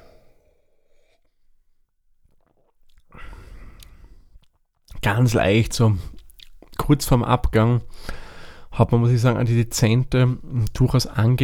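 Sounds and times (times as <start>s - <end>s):
person sipping and swallowing lemon Radler beer: 2.2s - 4.9s
speech: 5.0s - 6.2s, 6.9s - 8.2s, 8.8s - 11.4s.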